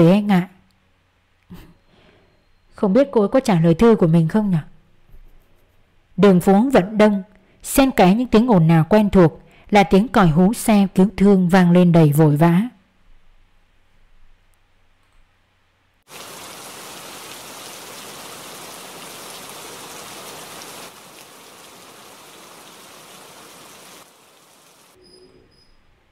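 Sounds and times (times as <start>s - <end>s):
speech: 0.0s - 0.6s, 2.8s - 4.7s, 6.2s - 12.8s
autumn rain shower on a street: 16.1s - 25.0s.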